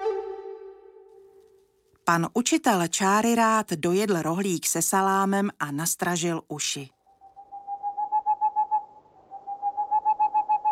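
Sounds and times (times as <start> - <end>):
speech: 2.1 - 7.0
owl-shaped clock hooting softly: 7.0 - 10.6.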